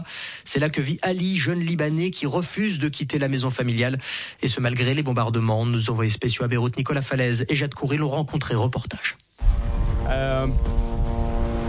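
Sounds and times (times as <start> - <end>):
speech: 0.0 - 9.3, 10.1 - 10.8
Israeli military drone buzzing in the sky over Beirut, Lebanon: 9.4 - 11.6.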